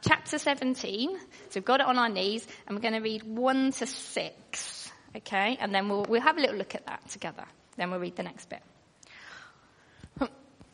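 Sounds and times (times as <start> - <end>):
speech: 0.0 - 8.7, 10.2 - 10.4
person coughing harshly: 10.2 - 10.7.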